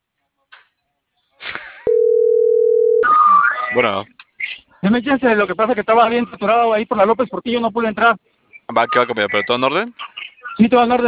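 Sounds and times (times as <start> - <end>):
telephone line tone as a call is placed: 1.9 - 3.2
speech: 3.8 - 4.2, 4.8 - 10.0, 10.6 - 11.0.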